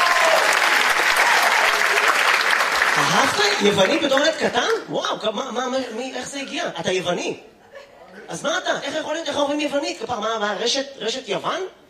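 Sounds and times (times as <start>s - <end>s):
audience applause: 0.0s - 4.4s
speech: 3.2s - 7.5s, 8.2s - 11.8s.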